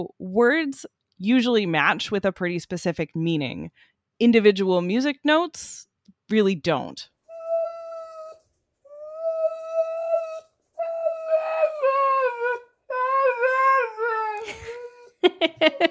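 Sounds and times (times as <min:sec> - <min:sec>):
speech: 0:00.0 - 0:07.1
husky dog whining and whimpering: 0:07.3 - 0:15.2.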